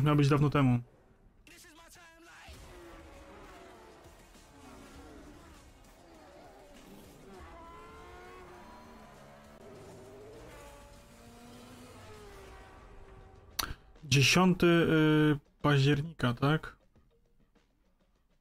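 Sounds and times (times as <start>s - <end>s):
speech: 0.0s - 1.7s, 14.1s - 16.8s
racing car engines revving in a racing video game trailer: 0.0s - 14.0s
tire squeal: 2.6s - 10.8s.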